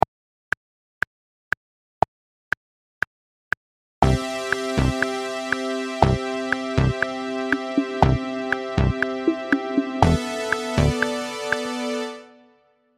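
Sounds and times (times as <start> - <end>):
improvised four-bar pop rhythm: 4.0 - 12.2.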